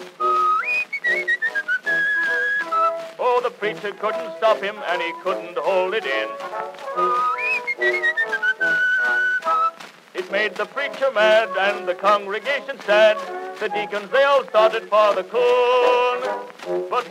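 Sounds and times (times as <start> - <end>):
person whistling a tune: 0.2 - 3.1, 7.0 - 9.8
speech: 3.6 - 7.9, 10.3 - 17.0.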